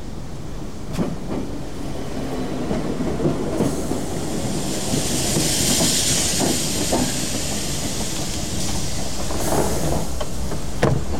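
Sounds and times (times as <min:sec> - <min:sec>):
train pulling into a station: 0:00.0 - 0:11.1
train brakes hissing: 0:03.6 - 0:10.7.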